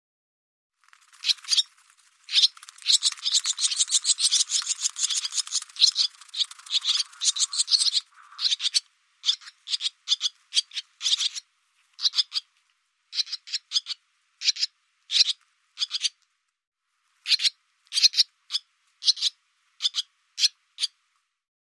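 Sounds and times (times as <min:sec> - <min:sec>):
barn swallow calls: 0:01.1 - 0:12.5, 0:13.1 - 0:16.2, 0:17.2 - 0:21.0.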